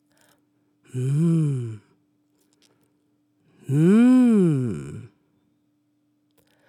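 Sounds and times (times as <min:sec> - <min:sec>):
speech: 0:00.9 - 0:01.8, 0:03.7 - 0:04.0
person humming mmh as if tasting food: 0:00.9 - 0:01.9, 0:03.6 - 0:05.1.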